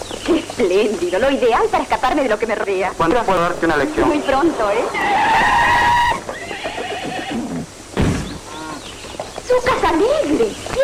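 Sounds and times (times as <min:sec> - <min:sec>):
speech: 0:00.3 - 0:05.6, 0:09.5 - 0:10.8
horse whinnying with a long shrill wavering neigh: 0:03.8 - 0:08.9
horse snorting and blowing: 0:04.9 - 0:08.9.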